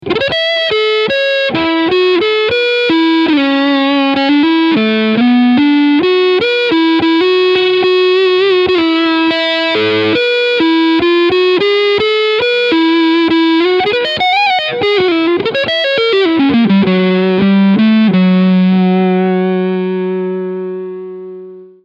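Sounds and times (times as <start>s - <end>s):
crunch electric guitar tone with both pickups: 0.0s - 21.8s.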